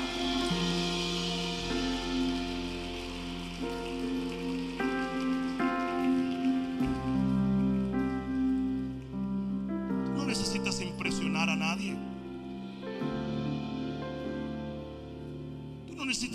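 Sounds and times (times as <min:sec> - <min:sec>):
crowd applauding: 0:00.0 - 0:09.2
sustained organ-like keyboard chords: 0:00.0 - 0:16.3.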